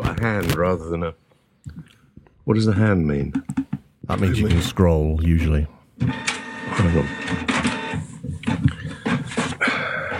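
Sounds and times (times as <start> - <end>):
speech: 0.2 - 8.6
printer whirring and clattering as it feeds and prints: 6.0 - 10.1.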